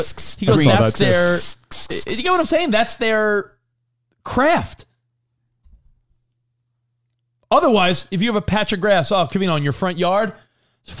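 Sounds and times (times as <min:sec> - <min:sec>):
person imitating a spray paint can with their mouth: 0:00.0 - 0:02.6
speech: 0:00.0 - 0:03.6, 0:04.2 - 0:04.9, 0:07.5 - 0:10.9.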